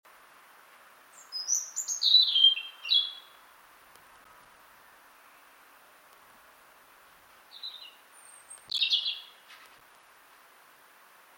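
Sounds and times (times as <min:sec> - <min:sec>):
European robin Erithacus rubecula singing: 0:01.1 - 0:03.5, 0:07.5 - 0:09.5.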